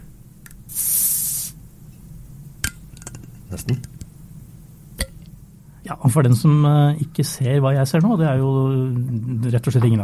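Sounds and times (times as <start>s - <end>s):
soda bottle cap twisted open with carbonation hissing: 0.7s - 1.6s
speech: 3.5s - 4.0s, 5.9s - 10.0s.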